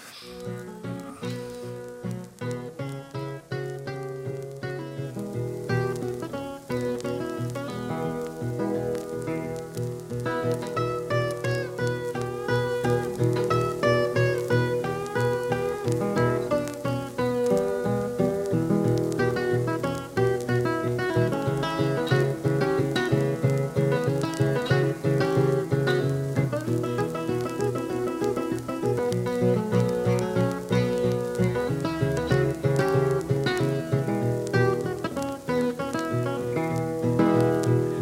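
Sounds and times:
blues recording playing: 0.0s - 38.0s
faint crackly surface noise: 0.0s - 38.0s.

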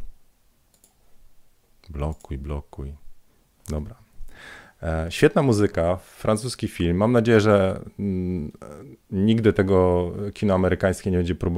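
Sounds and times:
computer mouse click: 0.7s - 1.0s
speech: 1.9s - 3.0s, 3.7s - 11.5s.

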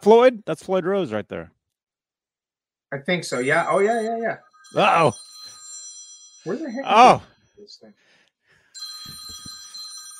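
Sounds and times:
speech: 0.0s - 1.6s, 2.9s - 5.3s, 6.4s - 8.1s
phone ringing with incoming WhatsApp call: 3.3s - 7.5s, 8.7s - 10.1s.

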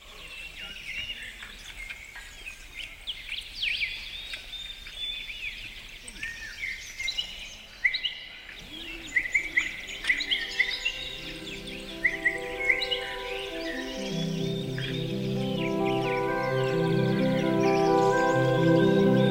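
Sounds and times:
several birds singing chirps, trills and whistled notes: 0.0s - 19.2s
steady background hiss: 8.4s - 19.2s.

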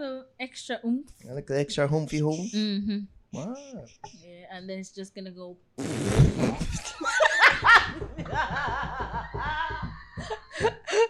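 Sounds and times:
speech: 0.0s - 9.6s
voice imitating a deflating balloon with a sputtering raspberry: 3.4s - 4.1s, 5.8s - 7.1s
people laughing and giggling: 6.6s - 11.0s.

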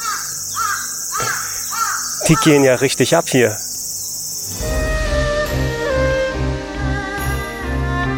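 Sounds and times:
birds cawing from trees: 0.0s - 4.6s
high-pitched hiss: 0.0s - 8.0s
speech: 2.3s - 3.6s.

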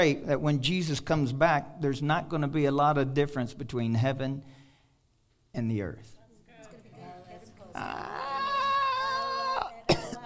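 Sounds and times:
speech: 0.0s - 4.6s, 5.5s - 6.2s, 7.8s - 8.2s
strained vocal sound: 7.0s - 10.2s
person in a crowd coughing: 9.8s - 10.2s.

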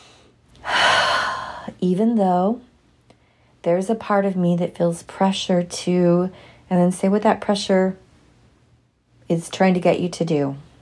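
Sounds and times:
person drawing a big deep breath: 0.0s - 1.7s
speech: 1.8s - 2.7s, 3.6s - 8.0s, 9.3s - 10.7s.

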